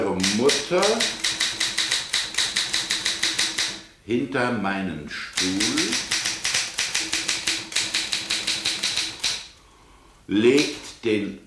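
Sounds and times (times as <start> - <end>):
typewriter keys clacking: 0.0 - 3.8, 5.3 - 9.5
speech: 0.2 - 1.2, 4.1 - 6.2, 10.3 - 11.4.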